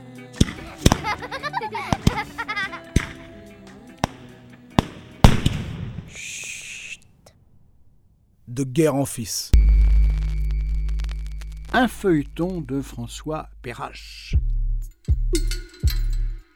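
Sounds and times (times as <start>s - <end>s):
firecrackers exploding: 0.4s - 1.3s, 1.9s - 2.4s, 4.0s - 6.2s
laughter: 0.6s - 3.6s
speech: 8.6s - 9.7s, 11.8s - 14.5s
shifting tonal background: 9.6s - 16.5s.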